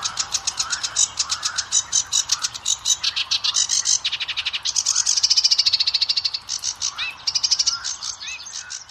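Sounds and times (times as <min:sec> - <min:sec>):
Sedge Warbler song of rattling trills and scratchy syllables: 0:00.0 - 0:08.8.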